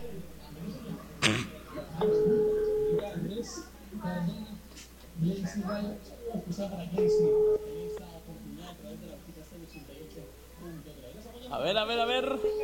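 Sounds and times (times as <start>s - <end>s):
telephone ringback tones of a call being dialed: 2.0s - 3.2s, 7.0s - 8.0s, 12.4s - 12.6s
speech: 5.5s - 7.6s, 9.6s - 12.6s.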